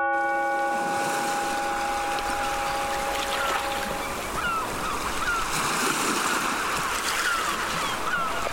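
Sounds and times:
water lapping against the shore: 0.2s - 8.5s
faint bird calls: 1.3s - 5.8s, 6.6s - 8.5s.

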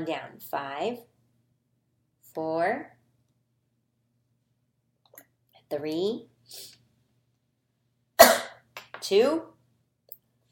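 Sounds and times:
speech: 0.0s - 1.1s, 2.4s - 3.0s, 5.7s - 6.8s, 9.0s - 9.5s
single sharp loud cough: 8.2s - 8.6s.

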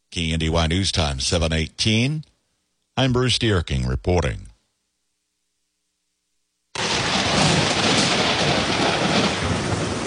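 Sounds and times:
speech: 0.2s - 2.3s, 3.0s - 4.5s
heavy rain: 6.8s - 10.0s
thunder rumbling: 6.8s - 10.0s.

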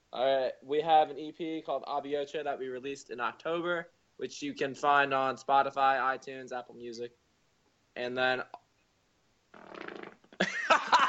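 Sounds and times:
speech: 0.1s - 7.2s, 8.0s - 8.6s
fart: 9.5s - 10.4s.

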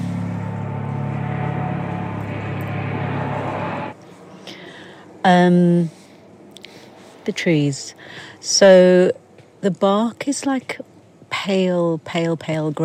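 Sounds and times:
short sharp tone: 0.0s - 4.0s
helicopter flying over a city: 0.0s - 4.3s
speech: 5.2s - 6.0s, 7.2s - 12.8s.

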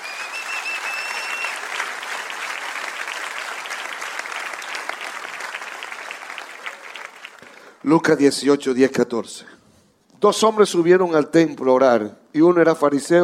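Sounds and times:
whistles: 0.0s - 1.7s
audience applauding loudly: 0.0s - 8.0s
speech: 7.8s - 9.6s, 10.2s - 13.2s.

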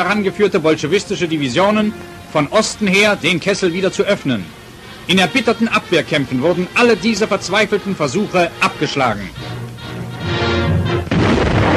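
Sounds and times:
speech: 0.0s - 9.6s
anti-aircraft artillery firing on tanks with heavy continuous rumble: 10.6s - 11.7s
loud sharp blast of anti-aircraft artillery gunfire: 11.1s - 11.7s.

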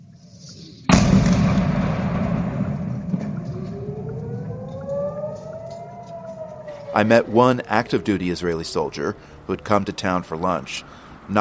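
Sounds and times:
sudden loud blast of rocket impact: 0.9s - 4.9s
air raid siren wailing: 2.4s - 10.4s
speech: 7.0s - 11.3s.

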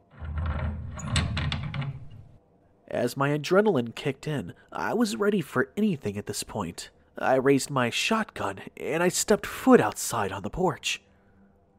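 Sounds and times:
door slowly opened: 0.0s - 2.4s
speech: 2.9s - 11.1s.

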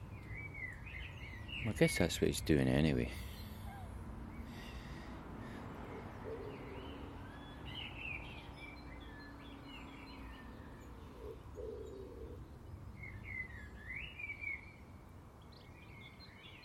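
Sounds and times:
other birds chirping faintly: 0.0s - 16.6s
outdoor noise: 0.0s - 16.6s
speech: 1.6s - 3.3s
pigeon cooing: 5.8s - 7.0s, 11.0s - 12.4s.

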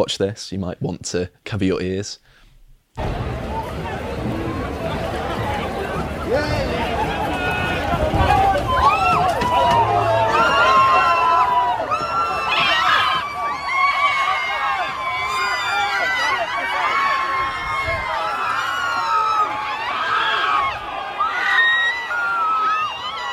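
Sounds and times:
speech: 0.0s - 2.4s, 3.0s - 3.3s
agitated chatter of protesters: 3.0s - 21.6s
crowd of protesters screaming and shrieking: 3.0s - 23.3s
protesters shouting: 3.4s - 23.3s.

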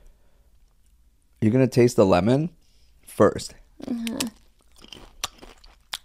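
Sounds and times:
speech: 1.4s - 4.4s
biting crunchy food seasoned with pepper and lime: 3.8s - 6.0s.

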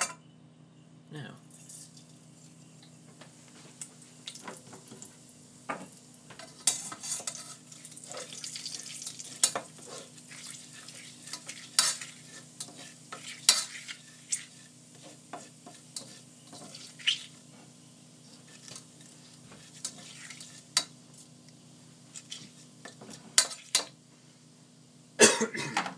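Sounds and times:
low constant hum: 0.0s - 25.9s
spices sizzling in a hot frying pan: 1.5s - 25.2s
utensil stirring and scraping spices in a frying pan: 6.4s - 17.4s, 18.3s - 21.3s.

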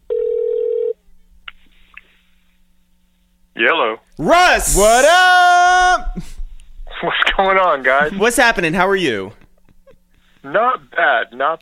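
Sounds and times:
faint telephone line hum: 0.0s - 11.6s
steady telephone tone: 0.1s - 1.0s
speech: 3.6s - 5.6s, 7.0s - 9.4s, 10.4s - 11.6s.

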